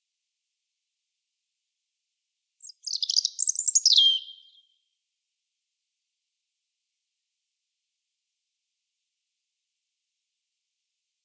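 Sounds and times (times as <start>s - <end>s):
European robin singing: 2.6s - 4.7s.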